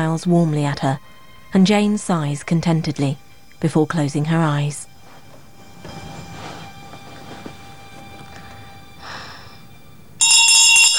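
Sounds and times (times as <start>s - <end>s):
speech: 0.1s - 4.9s
handbell rung loudly: 10.2s - 10.9s.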